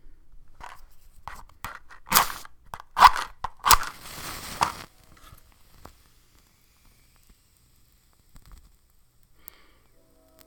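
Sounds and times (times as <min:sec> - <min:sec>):
dried yerba santa burning and crackling for a smoke cleansing: 0:03.6 - 0:10.4.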